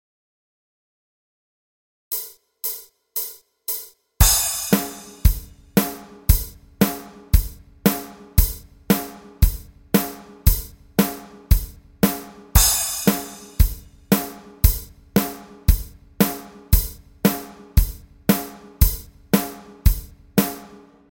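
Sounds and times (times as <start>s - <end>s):
disco style bass exercises: 4.2s - 20.9s.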